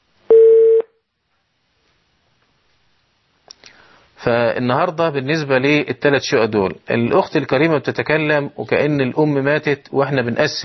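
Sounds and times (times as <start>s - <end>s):
telephone tone beep: 0.3s - 0.9s
speech: 4.2s - 10.6s.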